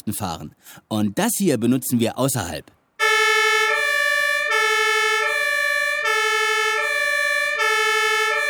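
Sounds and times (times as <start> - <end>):
speech: 0.0 - 2.8
two-tone emergency siren alternating between high and low pitch: 3.0 - 8.4.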